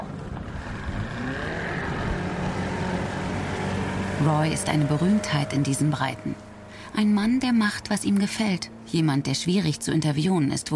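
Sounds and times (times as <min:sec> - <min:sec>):
small teak motorboat engine droning: 0:00.0 - 0:10.7
speech: 0:04.2 - 0:10.7.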